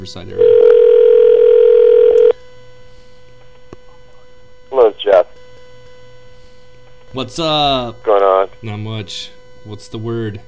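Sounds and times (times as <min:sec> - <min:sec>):
speech: 0:00.0 - 0:00.7, 0:07.1 - 0:10.4
telephone dial tone: 0:00.4 - 0:02.4.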